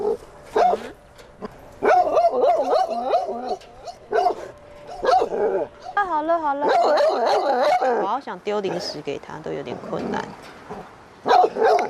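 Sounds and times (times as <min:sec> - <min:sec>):
dog barking and yowling: 0:00.0 - 0:01.0, 0:01.8 - 0:06.0, 0:06.6 - 0:09.0, 0:10.7 - 0:11.8
speech: 0:08.3 - 0:11.0.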